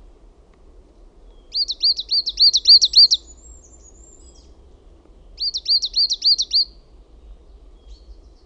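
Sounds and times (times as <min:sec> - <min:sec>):
coal tit singing high thin two-note phrases: 0:01.5 - 0:03.4, 0:05.4 - 0:06.7.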